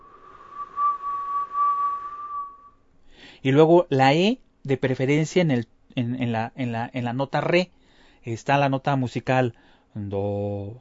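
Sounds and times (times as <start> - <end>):
person whistling a long delicate birdcall imitation in vocal practice: 0.0 - 2.8
speech: 3.4 - 10.7.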